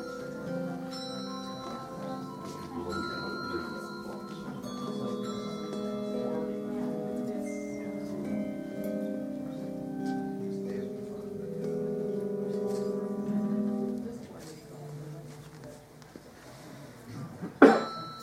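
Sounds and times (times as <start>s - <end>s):
handbells struck with mallets ringing: 0.0s - 10.4s, 17.7s - 18.2s
low chatter: 0.0s - 18.2s.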